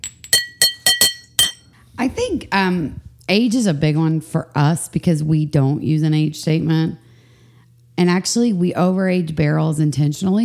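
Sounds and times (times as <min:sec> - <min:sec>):
glasses clinking in a toast: 0:00.3 - 0:01.7
speech: 0:02.1 - 0:07.0, 0:08.0 - 0:10.4.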